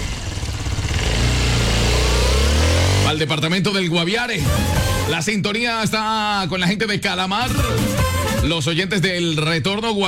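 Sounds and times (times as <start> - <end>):
motorcycle engine idling and revving as it pulls away: 0.0 - 3.4, 4.4 - 5.1
speech: 3.1 - 10.0.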